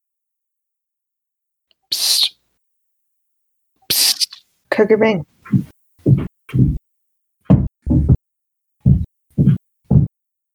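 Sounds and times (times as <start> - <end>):
speech: 4.8 - 5.7, 6.5 - 6.8
heavy thudding footsteps at a walking pace: 5.4 - 6.8, 7.5 - 8.2, 8.8 - 10.1.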